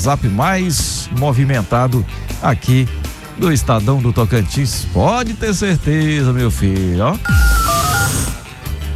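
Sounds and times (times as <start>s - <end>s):
speech: 0.0s - 7.5s
short electronic beeps: 7.2s - 8.7s
rhythmic musical ringtone with a thumping beat: 7.2s - 8.8s
telephone ringing: 7.3s - 8.7s.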